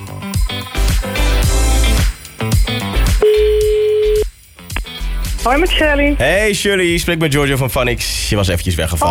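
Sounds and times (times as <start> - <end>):
busy music: 0.0 - 8.3
telephone ringback tone while calling back: 3.2 - 4.3
speech: 5.5 - 9.0.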